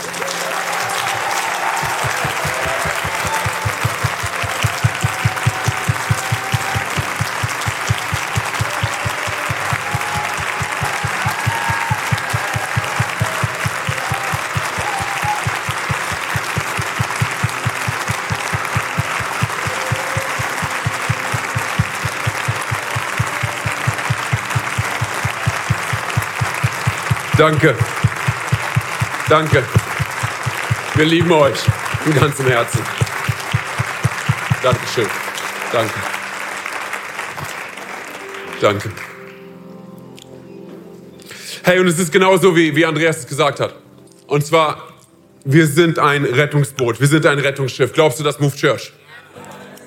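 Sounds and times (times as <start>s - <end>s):
applause from a large church audience: 0.0s - 39.6s
speech: 27.4s - 27.9s, 29.3s - 29.9s, 31.0s - 33.0s, 34.6s - 36.1s, 38.6s - 39.1s, 41.7s - 49.0s.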